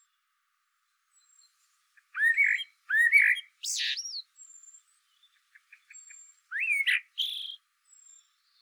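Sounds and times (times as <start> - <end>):
soft faint blackbird chips: 1.2 - 8.5
Eurasian blackbird Turdus merula whistling: 2.2 - 4.2, 6.5 - 7.6.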